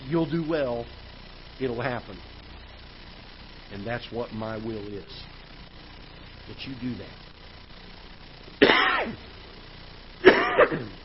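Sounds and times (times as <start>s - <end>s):
speech: 0.1s - 1.0s, 1.6s - 2.3s, 3.7s - 5.3s, 6.5s - 7.2s, 10.6s - 11.0s
person coughing: 8.6s - 9.2s, 10.2s - 11.0s.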